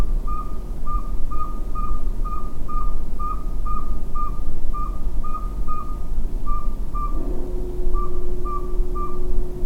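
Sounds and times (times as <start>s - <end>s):
long droning hum: 0.0s - 9.6s
steady low rumble: 0.0s - 9.6s
Northern saw-whet owl giving short whistled toots: 0.2s - 9.6s.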